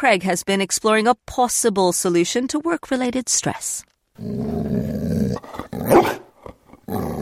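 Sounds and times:
speech: 0.0s - 6.2s
greyhound mix dog growling: 4.2s - 7.2s
greyhound mix dog barking: 5.9s - 6.3s.

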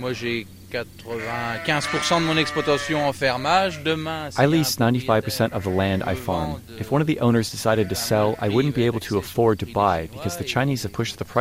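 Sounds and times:
speech: 0.0s - 11.3s
black-faced Suffolk sheep bleating as a farmer feeds them: 1.1s - 7.0s, 7.6s - 9.4s.

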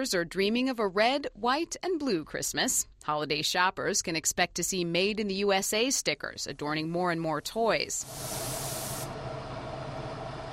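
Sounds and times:
speech: 0.0s - 8.6s
finish being sprayed onto wooden toy fire trucks in a toy factory: 8.0s - 9.2s.

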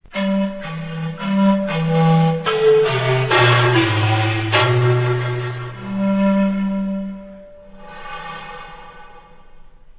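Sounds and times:
zamponas playing alone: 0.0s - 9.0s.

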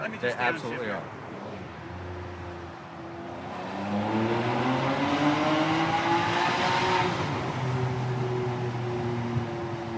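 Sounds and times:
speech: 0.0s - 1.2s, 3.9s - 4.4s
car engine revving while accelerating: 1.3s - 9.1s.

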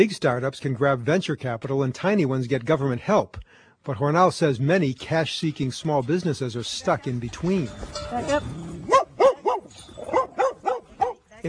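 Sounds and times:
speech: 0.0s - 8.8s
dogs barking at a kennel: 8.8s - 11.3s.

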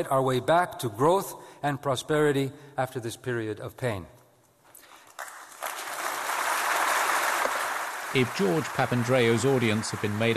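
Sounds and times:
speech: 0.0s - 4.2s, 8.1s - 10.3s
business audience applauding after a speech: 5.0s - 10.3s.

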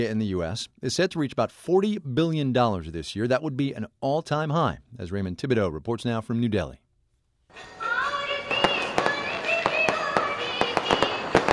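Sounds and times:
speech: 0.0s - 6.8s
festive music with melodic voices or instruments: 7.5s - 11.5s
Diwali firework bangs and crackles: 8.3s - 11.5s.

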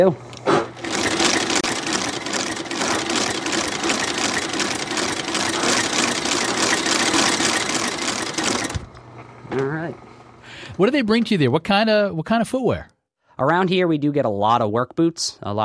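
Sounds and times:
speech: 0.0s - 0.3s, 10.8s - 15.6s
shoe repair machine motor whirring with fast clatter: 0.4s - 9.0s.

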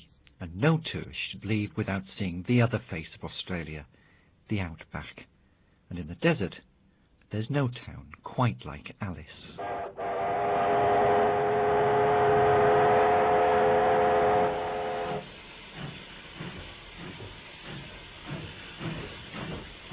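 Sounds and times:
speech: 0.4s - 5.3s, 5.9s - 6.7s, 7.3s - 10.1s
steam engine droning whistle-like tone: 9.6s - 15.3s
steam engine escaping steam hissing: 9.6s - 19.9s.

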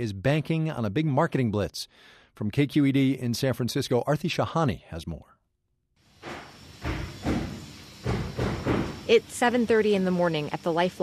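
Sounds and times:
speech: 0.0s - 5.3s, 9.1s - 11.0s
construction crew banging on walls at a clinic: 6.2s - 9.0s.

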